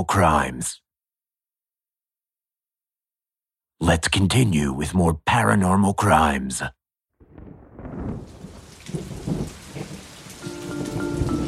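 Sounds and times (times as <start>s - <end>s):
speech: 0.0s - 0.8s, 3.8s - 6.8s
light rain drizzle pattering: 7.2s - 11.4s.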